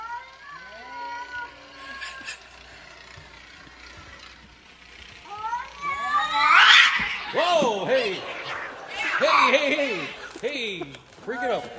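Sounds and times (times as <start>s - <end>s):
two cats yowling and caterwauling on a porch: 5.8s - 10.4s.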